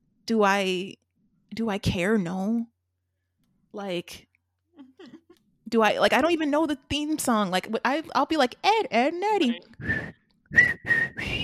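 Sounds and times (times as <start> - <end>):
speech: 0.3 - 1.0, 1.6 - 2.7, 3.7 - 4.3, 5.0 - 11.0
person attempting to whistle a halting tune: 9.8 - 11.4.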